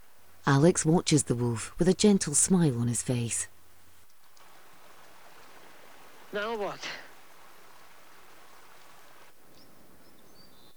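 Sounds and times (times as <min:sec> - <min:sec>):
rain falling on a misty day near a river: 0:00.0 - 0:10.7
speech: 0:00.5 - 0:03.5, 0:06.3 - 0:07.0
faint high bird chirps: 0:04.2 - 0:10.7.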